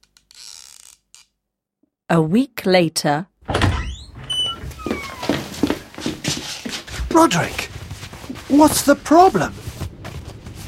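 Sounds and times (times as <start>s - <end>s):
speech: 2.1s - 3.3s, 7.2s - 7.6s, 8.5s - 9.6s
wooden rocking chair creaking as a man rocks in it: 3.8s - 7.4s.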